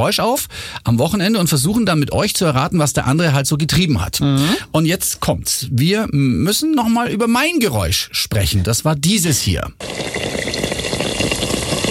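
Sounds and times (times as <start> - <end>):
speech: 0.0 - 10.6
yeast-dough pastries frying in hot fat: 9.8 - 11.8.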